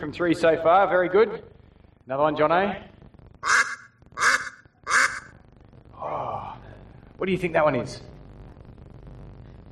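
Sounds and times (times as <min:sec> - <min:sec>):
speech: 0:00.0 - 0:03.6, 0:07.2 - 0:08.1
duck quacking: 0:03.4 - 0:05.3.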